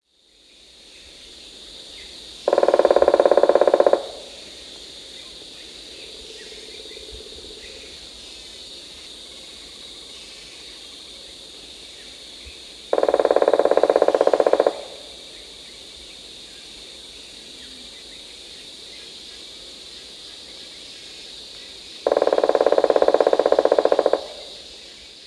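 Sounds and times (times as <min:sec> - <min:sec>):
high insect hum in Danum Valley: 0:00.0 - 0:25.2
buff-necked woodpecker giving pulsed bursts in Danum Valley: 0:02.5 - 0:04.4, 0:12.9 - 0:15.3, 0:22.0 - 0:24.7.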